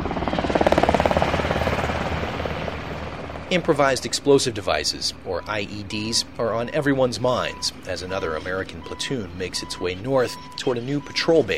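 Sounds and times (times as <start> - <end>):
medevac helicopter rotor thumping: 0.0 - 9.6
medevac helicopter engine roar: 0.0 - 11.5
speech: 3.5 - 11.5.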